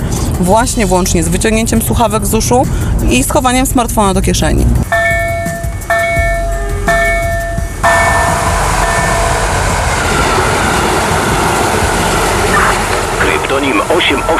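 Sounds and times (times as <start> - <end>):
train roaring past a railway level crossing: 0.0 - 14.3
speech: 0.4 - 5.2
railway level crossing warning bell ringing: 4.8 - 9.6.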